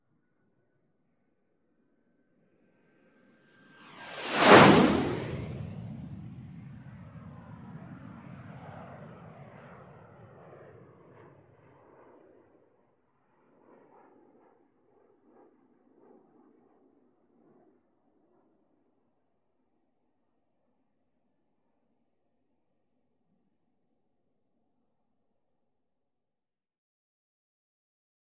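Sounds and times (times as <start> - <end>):
Gnat aircraft flying by low over canyon: 2.5 - 19.2.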